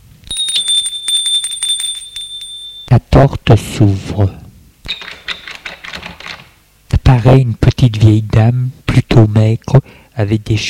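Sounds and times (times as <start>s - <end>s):
doorbell ringing at a front door with rattling strikes: 0.3s - 3.0s
speech: 2.9s - 5.0s, 7.2s - 10.6s.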